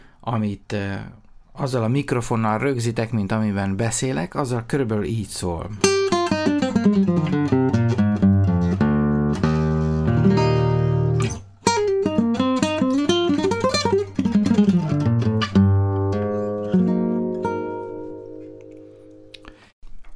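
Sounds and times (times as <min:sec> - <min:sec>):
speech: 0:00.2 - 0:07.8
unamplified nylon-string guitar playing a flowing melody: 0:05.8 - 0:19.6.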